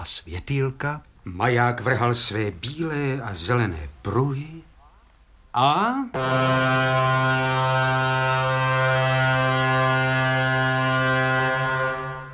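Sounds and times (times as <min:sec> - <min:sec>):
speech: 0:00.0 - 0:04.7, 0:05.5 - 0:10.3
ship's siren blaring at Colombo harbour at night: 0:06.2 - 0:12.3.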